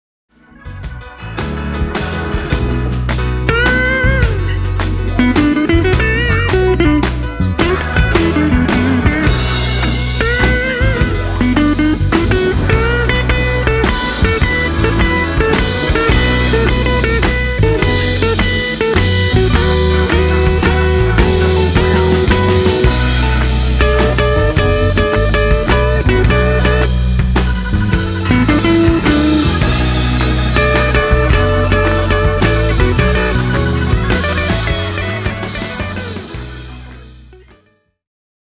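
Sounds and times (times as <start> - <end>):
electric guitar playing blues: 0.4 - 37.6
laughter: 1.2 - 36.9.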